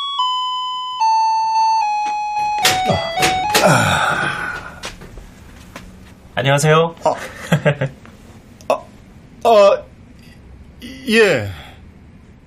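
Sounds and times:
apartment intercom electronic chime: 0.2s - 4.6s
speech: 2.9s - 4.1s, 6.4s - 8.0s, 9.5s - 9.9s, 11.0s - 11.6s.

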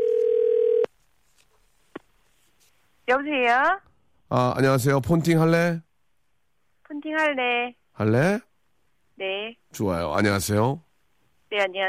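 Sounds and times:
telephone ringback tone while placing a call: 0.0s - 0.9s
speech: 3.1s - 5.9s, 6.9s - 8.5s, 9.2s - 10.8s, 11.5s - 11.8s.

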